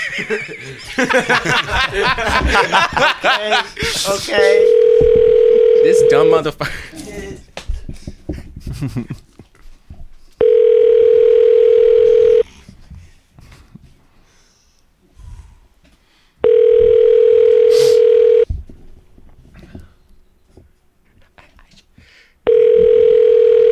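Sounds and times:
laughter: 0.0s - 5.1s, 5.9s - 9.7s
speech: 0.2s - 4.9s, 5.8s - 7.0s, 8.8s - 9.2s
phone ringback tone during a call to a business: 4.4s - 6.4s, 10.4s - 12.4s, 16.4s - 18.5s, 22.5s - 23.6s.

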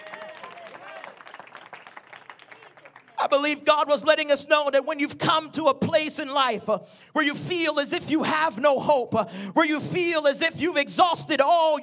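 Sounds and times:
audience clapping hands: 0.0s - 3.6s
speech: 3.2s - 11.8s.

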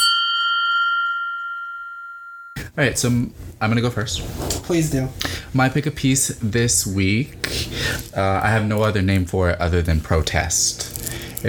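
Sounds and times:
bell ding sound effect: 0.0s - 2.6s
speech: 2.6s - 11.4s.

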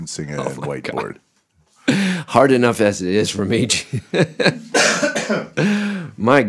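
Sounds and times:
speech: 0.0s - 1.3s, 1.9s - 6.4s
laughter: 3.7s - 5.0s
person coughing harshly: 4.7s - 5.9s.

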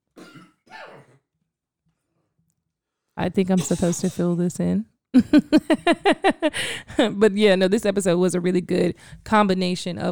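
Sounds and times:
person coughing harshly: 0.2s - 1.2s, 3.6s - 4.3s
speech: 3.2s - 10.1s
laughter: 5.2s - 7.2s.

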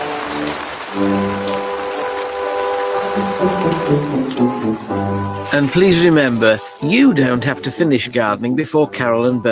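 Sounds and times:
heavy rain: 0.0s - 7.7s
speech: 1.0s - 1.4s, 3.9s - 4.2s, 5.6s - 9.4s.

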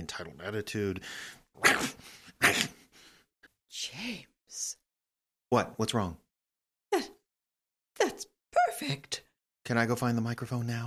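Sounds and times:
speech: 0.1s - 2.8s, 3.7s - 4.8s, 5.5s - 6.2s, 6.9s - 7.2s, 8.0s - 10.8s
person imitating a pug dog's voice: 1.6s - 2.7s.

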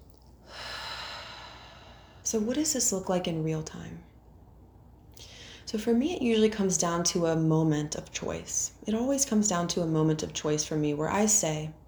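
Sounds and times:
deep breath: 0.4s - 2.3s, 5.2s - 5.7s
speech: 2.3s - 4.1s, 5.7s - 11.8s.

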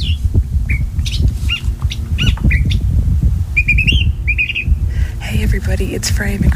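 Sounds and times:
California thrasher singing: 0.0s - 2.9s, 3.6s - 4.8s
constant low rumble of wind noise: 0.0s - 6.5s
speech: 5.7s - 6.5s.

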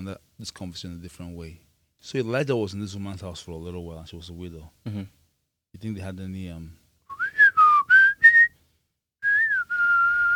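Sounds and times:
speech: 0.0s - 6.8s
person whistling a short tune: 7.1s - 8.5s, 9.2s - 10.3s.

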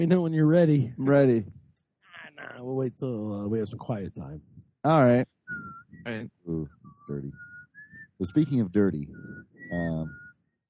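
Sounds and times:
speech: 0.0s - 1.6s, 2.4s - 7.5s, 8.2s - 10.2s
person whistling one steady sustained note: 5.5s - 10.6s.

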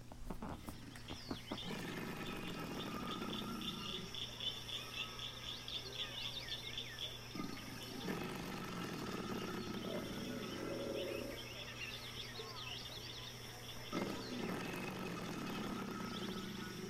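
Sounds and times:
insects chattering: 0.0s - 16.8s
breathy hissing noise: 0.4s - 4.2s, 7.4s - 11.6s, 13.9s - 16.8s
alligator bellowing: 0.4s - 12.0s, 13.6s - 16.8s.

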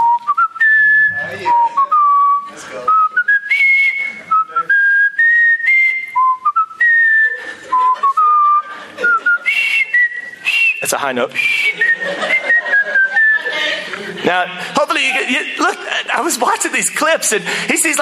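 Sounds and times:
man whistling a marching film theme melody: 0.0s - 13.4s
laughter: 7.0s - 10.1s, 11.4s - 18.0s
speech: 10.9s - 12.4s, 14.3s - 18.0s.

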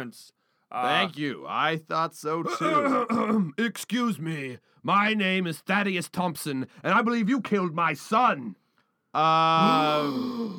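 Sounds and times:
speech: 0.0s - 8.6s, 9.2s - 10.5s
dramatic gasp stretching into a drawn-out voiced cry: 9.6s - 10.5s.

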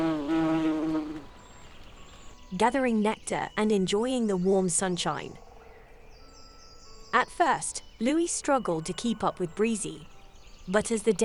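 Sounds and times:
bee buzzing while gathering nectar in warm sunshine: 0.0s - 1.5s
speech: 2.6s - 5.4s, 7.1s - 10.1s, 10.7s - 11.2s.

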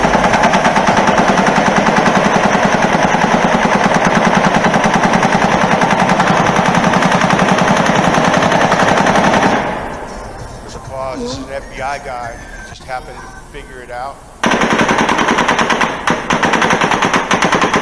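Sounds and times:
rapid machine-gun fire from a mass shooting: 0.0s - 9.8s, 14.4s - 17.8s
speech: 11.8s - 14.9s.

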